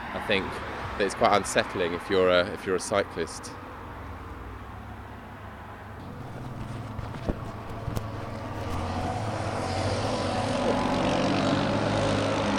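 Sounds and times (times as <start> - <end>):
speech: 0.3 - 3.6
sharp knocks: 6.0 - 9.2
quad bike engine doing a sideways wheelie down a road in Brussels: 6.0 - 12.5.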